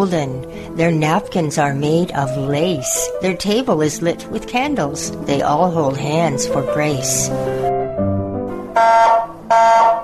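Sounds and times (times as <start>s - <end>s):
speech: 0.0s - 7.8s, 8.8s - 10.0s
smoke alarm blaring: 8.8s - 10.0s.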